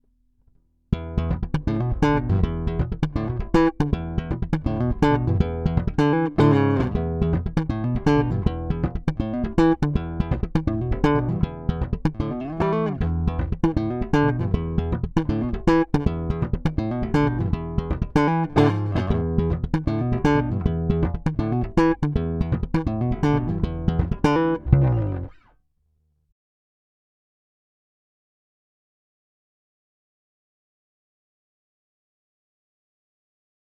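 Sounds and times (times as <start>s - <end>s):
slap bass line on a P bass: 0.9s - 25.4s.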